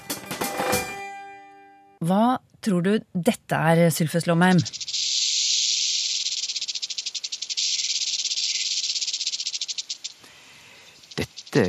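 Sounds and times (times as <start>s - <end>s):
speech: 2.0s - 4.9s
rattlesnake rattle buzzing: 4.5s - 11.6s.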